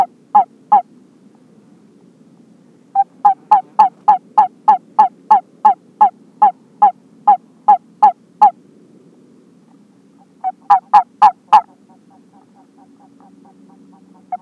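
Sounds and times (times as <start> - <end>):
California toad halophilus calling in brief mid-pitched chirps: 0.0 - 0.9, 3.0 - 8.6, 10.3 - 14.3
low steady hum: 0.0 - 14.3.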